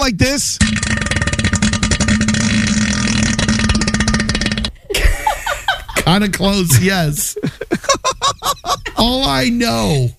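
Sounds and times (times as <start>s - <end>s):
speech: 0.0s - 0.9s, 6.1s - 8.0s, 9.0s - 10.1s
voice imitating a long deep bassy fart into a toilet bowl: 0.6s - 4.9s
laughter: 4.9s - 9.0s.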